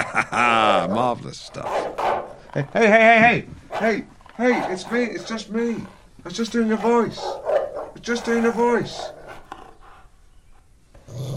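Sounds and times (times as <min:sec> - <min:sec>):
laughter: 0:00.0 - 0:01.2
speech: 0:00.3 - 0:01.9, 0:02.5 - 0:09.2
dog snuffling: 0:01.5 - 0:11.2
dog growling: 0:03.6 - 0:10.2, 0:11.0 - 0:11.3.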